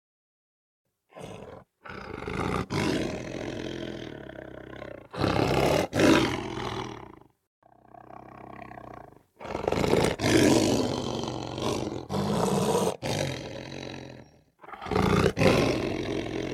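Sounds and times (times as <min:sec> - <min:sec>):
lion giving breathy rumbling soft roars: 0:01.1 - 0:16.5.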